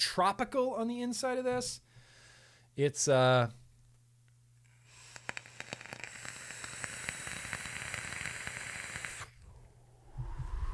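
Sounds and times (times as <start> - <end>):
speech: 0.0 - 1.9, 2.8 - 3.6
vape coil in a 30 millimeter atomizer on a dual 18650 mod crackling and sizzling: 4.9 - 9.4
low hum: 9.4 - 10.7.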